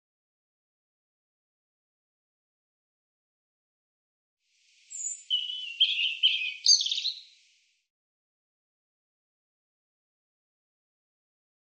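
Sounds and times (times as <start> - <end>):
European robin singing: 4.9 - 7.4.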